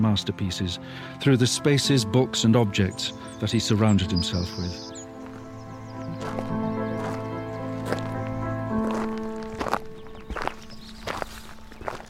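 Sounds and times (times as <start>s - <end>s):
speech: 0.0s - 4.9s
steady tonal background: 1.1s - 12.0s
footsteps walking down a country lane: 5.0s - 12.0s.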